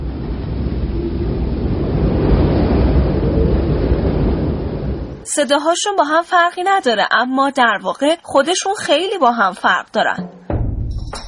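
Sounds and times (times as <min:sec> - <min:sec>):
low rumble of salt desert ambience: 0:00.0 - 0:05.3, 0:10.4 - 0:11.2
dense rush of wind in an open salt desert: 0:00.0 - 0:05.6
speech: 0:05.4 - 0:10.4.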